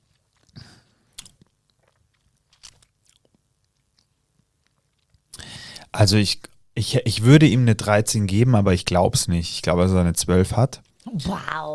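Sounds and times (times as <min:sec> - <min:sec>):
slurping wine through the lips while tasting: 0:00.0 - 0:03.4
speech: 0:06.0 - 0:11.7.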